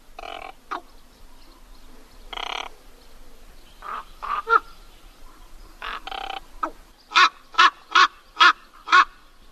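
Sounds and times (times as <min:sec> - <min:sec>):
common raven croaking and cawing: 0:00.2 - 0:00.9, 0:02.3 - 0:02.8, 0:05.8 - 0:09.2.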